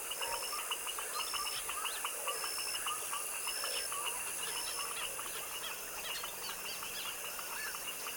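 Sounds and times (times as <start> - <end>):
foaming frog chorus at dusk in a tropical wetland swamp: 0.0 - 8.1.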